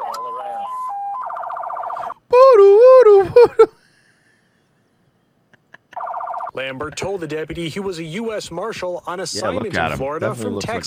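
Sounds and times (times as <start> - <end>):
police-style siren on a truck on a highway in Florida: 0.0 - 2.2
speech: 3.4 - 3.8, 6.6 - 10.8.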